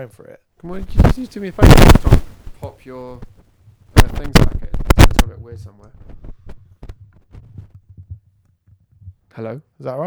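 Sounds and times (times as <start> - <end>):
speech: 0.0 - 2.2, 2.8 - 3.3, 4.0 - 4.6, 5.2 - 6.1, 9.4 - 10.0
static interference crackle on a phone line: 0.6 - 7.7.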